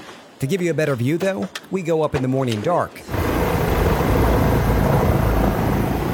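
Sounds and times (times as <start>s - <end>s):
speech: 0.4s - 3.1s
helicopter flying: 3.1s - 6.1s.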